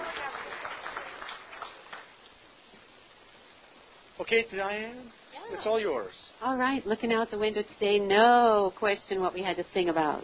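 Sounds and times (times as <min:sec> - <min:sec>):
room full of people applauding: 0:00.0 - 0:02.2
speech: 0:04.2 - 0:10.2.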